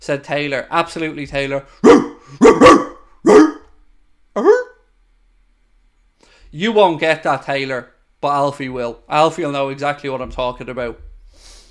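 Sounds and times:
speech: 0.0 - 3.5, 4.4 - 4.6, 6.5 - 11.5
person imitating dog barks and a yelp: 1.8 - 3.7, 4.4 - 4.8.

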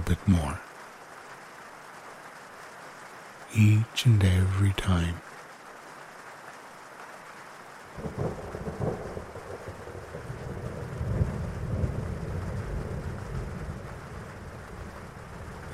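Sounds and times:
speech: 0.1 - 0.7, 3.5 - 5.3
low distant thunder rumbling: 8.0 - 15.7.

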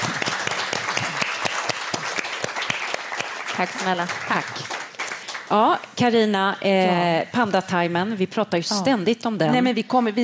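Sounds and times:
small group applauding: 0.0 - 5.6
speech: 3.6 - 4.8, 5.5 - 10.2.

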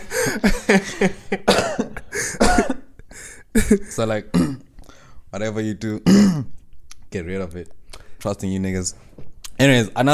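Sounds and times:
speech: 0.3 - 1.6, 3.6 - 4.6, 5.3 - 10.1
person coughing: 1.4 - 3.0, 3.6 - 4.7, 6.0 - 6.5.

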